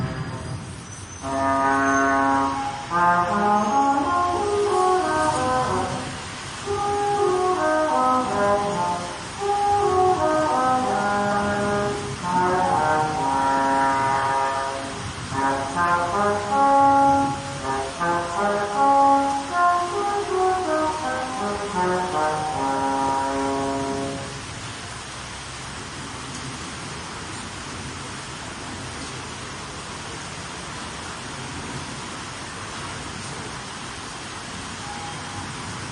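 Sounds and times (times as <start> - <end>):
steady low hum of traffic and city noise: 0.0 - 35.9
French horn playing a slow melody outdoors in a street: 1.2 - 24.6.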